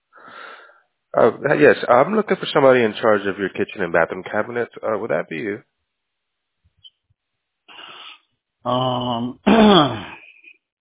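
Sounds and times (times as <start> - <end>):
speech: 1.2 - 5.7, 8.6 - 10.2
sneeze: 9.4 - 10.2.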